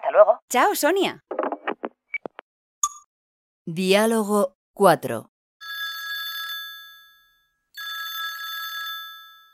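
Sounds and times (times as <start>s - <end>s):
speech: 0.1s - 1.2s, 3.7s - 5.3s
telephone ringing with an electronic trill: 5.6s - 9.5s.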